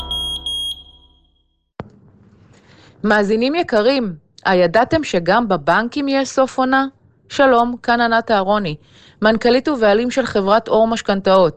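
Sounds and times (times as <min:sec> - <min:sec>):
smoke detector alarm beeping: 0:00.0 - 0:01.4
speech: 0:03.0 - 0:11.5.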